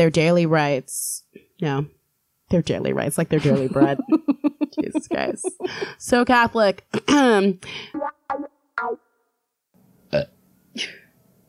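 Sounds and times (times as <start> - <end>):
speech: 0.0 - 9.0, 10.1 - 11.0
laughter: 3.4 - 5.9
loud burps: 10.1 - 11.0.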